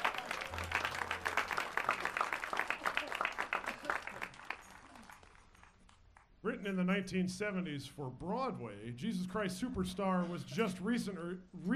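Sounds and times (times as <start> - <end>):
audience applause: 0.0 - 6.0
speech: 6.6 - 11.7.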